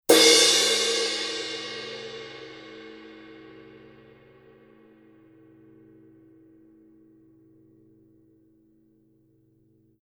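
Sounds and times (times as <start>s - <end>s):
Paiste Color Sound 900 Black crash cymbal: 0.1s - 5.7s.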